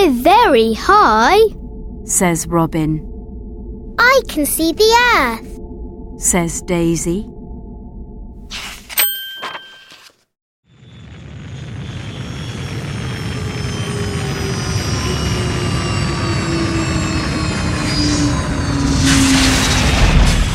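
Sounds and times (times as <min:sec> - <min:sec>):
speech: 0:00.2 - 0:03.1, 0:04.0 - 0:05.5, 0:06.2 - 0:07.4
bright chime-like dings: 0:09.0 - 0:10.1
rocket launching and zooming into the sky: 0:10.8 - 0:20.5.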